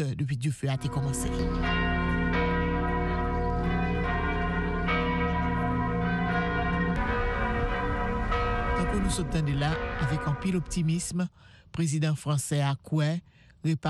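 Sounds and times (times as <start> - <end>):
speech: 0.0 - 2.2, 9.0 - 13.8
cathedral church bells ringing in France: 0.8 - 11.3.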